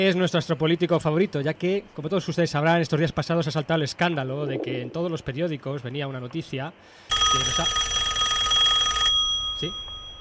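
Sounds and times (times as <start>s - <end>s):
speech: 0.0s - 8.0s, 9.6s - 9.8s
telephone bell ringing with a rapid metallic trill: 7.1s - 10.1s.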